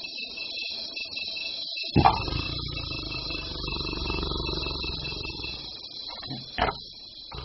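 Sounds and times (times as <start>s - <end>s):
steady high chirr of insects: 0.0s - 7.4s
big cat deep rumbling roar: 2.0s - 7.4s.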